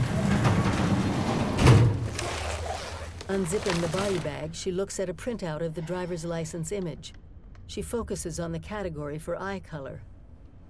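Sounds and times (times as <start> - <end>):
metal cadaver drawer sliding open in a morgue autopsy room: 0.0 - 4.3
speech: 3.3 - 10.1.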